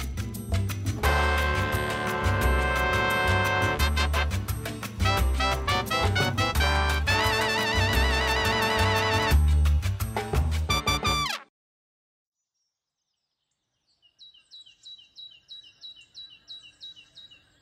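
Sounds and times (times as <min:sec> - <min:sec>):
loud music: 0:00.9 - 0:11.5
birds chirping and singing: 0:13.1 - 0:17.6.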